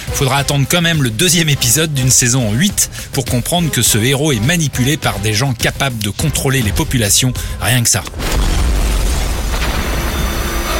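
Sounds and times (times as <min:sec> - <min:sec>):
speech: 0:00.2 - 0:08.6
debris crackling from office explosion: 0:07.9 - 0:10.7
office explosion with deep rumbling boom: 0:08.1 - 0:10.7.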